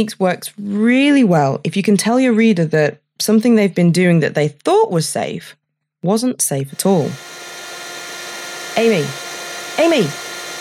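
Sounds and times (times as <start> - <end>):
speech: 0.0 - 7.4, 8.8 - 9.2, 9.8 - 10.2
vacuum cleaner vacuuming up a spider in a bedroom: 6.8 - 10.6.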